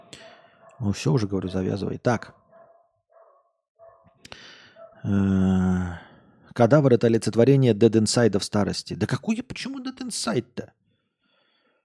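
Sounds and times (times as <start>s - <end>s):
speech: 0.1s - 2.4s, 5.0s - 10.8s
dog barking loose in a village: 0.1s - 5.1s.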